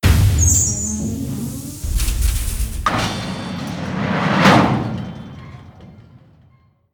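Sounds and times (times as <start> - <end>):
harvester engine revving up: 0.0 - 4.0.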